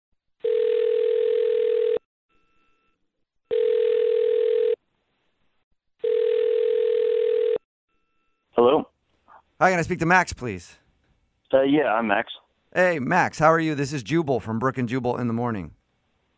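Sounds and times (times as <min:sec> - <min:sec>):
telephone dial tone: 0:00.5 - 0:02.0, 0:03.5 - 0:04.8, 0:06.0 - 0:07.6
speech: 0:09.6 - 0:10.8, 0:11.5 - 0:15.8.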